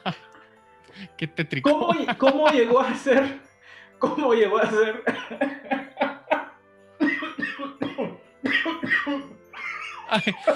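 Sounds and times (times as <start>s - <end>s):
laughter: 1.0s - 3.4s, 4.5s - 6.5s, 9.0s - 10.5s
man coughing harshly: 1.0s - 3.4s, 4.0s - 6.4s, 7.0s - 10.5s
speech: 1.2s - 5.7s, 10.1s - 10.5s
gasping breaths: 3.6s - 4.0s.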